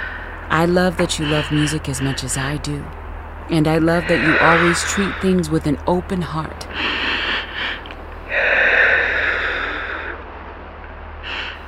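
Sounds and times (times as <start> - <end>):
person breathing in and out: 0.0 - 0.5, 3.9 - 5.4, 6.7 - 10.2, 11.2 - 11.6
speech: 0.5 - 7.8.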